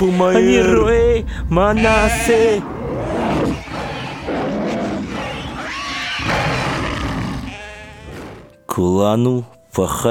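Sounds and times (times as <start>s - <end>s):
speech: 0.0s - 2.8s, 8.8s - 10.0s
wolf's deep growling roar: 2.6s - 8.5s.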